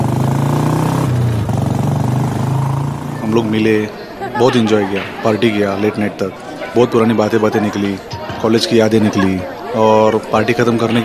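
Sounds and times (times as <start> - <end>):
motorcycle engine revving and pulling away toward Pune: 0.0 - 5.1
laughter: 3.0 - 11.0
speech: 3.4 - 11.0.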